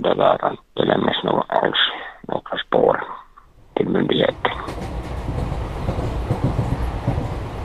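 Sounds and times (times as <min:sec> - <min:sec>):
speech: 0:00.0 - 0:01.8
train carriage rolling along the rails with low rumble: 0:03.8 - 0:07.6
faint rhythmic clatter of a train carriage: 0:04.1 - 0:07.6.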